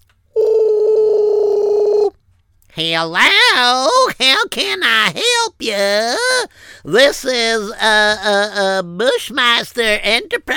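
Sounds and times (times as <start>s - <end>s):
loud steady telephone tone: 0.3s - 2.1s
speech: 2.8s - 10.5s.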